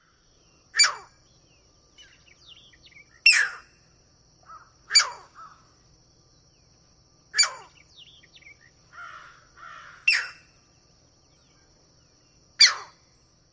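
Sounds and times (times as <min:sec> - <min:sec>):
skeow calls: 0:00.0 - 0:01.3, 0:02.0 - 0:03.8, 0:04.4 - 0:05.7, 0:07.3 - 0:10.6, 0:12.6 - 0:13.0.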